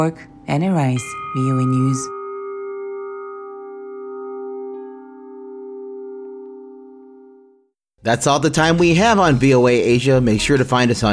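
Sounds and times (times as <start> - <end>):
speech: 0.0 - 2.2, 8.0 - 11.1
church bell tolling: 1.0 - 7.5.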